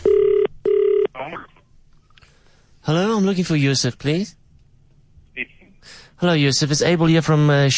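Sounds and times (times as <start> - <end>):
telephone ringing tones over the line: 0.0 - 1.2
speech: 2.9 - 4.4, 5.4 - 7.7.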